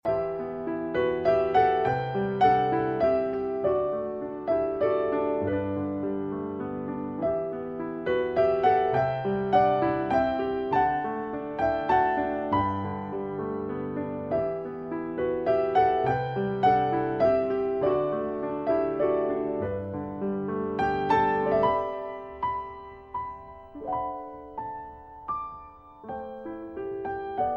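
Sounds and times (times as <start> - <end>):
romantic tone: 0.0 - 27.5.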